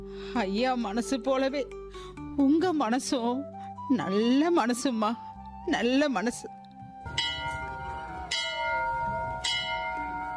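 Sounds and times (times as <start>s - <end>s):
speech: 0.2s - 6.6s
temple bell ringing: 7.1s - 10.3s.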